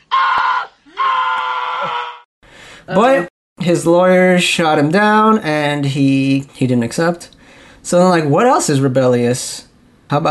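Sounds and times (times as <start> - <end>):
man screaming in imitation of a comedian's scream: 0.0 - 2.3
speech: 2.9 - 10.2.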